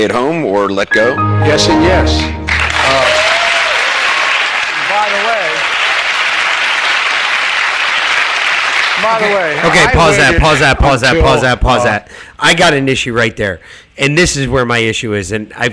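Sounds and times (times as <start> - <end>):
speech: 0.0 - 3.1, 9.0 - 15.7
canned applause: 2.4 - 10.6.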